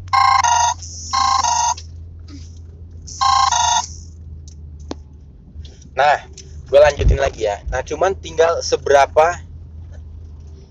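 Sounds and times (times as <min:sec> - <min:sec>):
low steady hum: 0:00.0 - 0:10.7
mobile phone ringtone of bright electronic tones: 0:00.1 - 0:01.8, 0:03.1 - 0:04.1
speech: 0:06.0 - 0:09.5.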